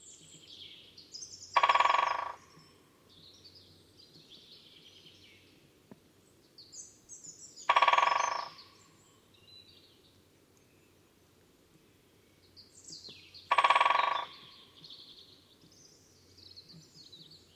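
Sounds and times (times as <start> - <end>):
great spotted woodpecker harsh call: 1.6 - 2.8, 7.7 - 8.9, 13.5 - 14.8.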